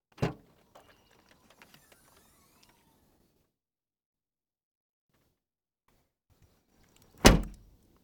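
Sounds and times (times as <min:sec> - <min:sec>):
Subaru car trunk door: 0:07.2 - 0:07.6.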